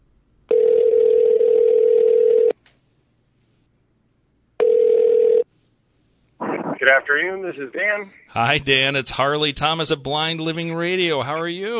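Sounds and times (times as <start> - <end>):
electronic telephone ringback tone as a call is placed: 0.5 - 2.5, 4.6 - 5.4
speech: 6.8 - 11.7.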